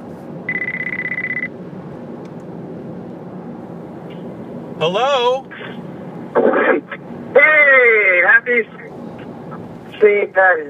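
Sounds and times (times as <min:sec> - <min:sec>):
low steady rumble: 0:00.0 - 0:10.6
telephone ringing with electronic trill: 0:00.5 - 0:01.5
speech: 0:04.8 - 0:05.8, 0:06.4 - 0:08.8, 0:10.0 - 0:10.6.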